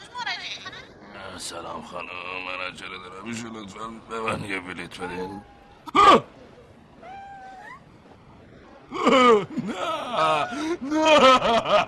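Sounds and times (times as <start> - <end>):
speech: 1.4 - 6.3, 9.7 - 11.8
cat meowing: 7.0 - 7.8
laughter: 8.9 - 11.8.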